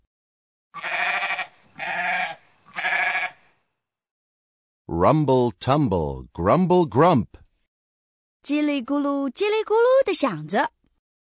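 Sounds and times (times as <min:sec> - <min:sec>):
baby goat bleating: 0:00.8 - 0:03.4
speech: 0:05.0 - 0:07.4, 0:08.4 - 0:10.8.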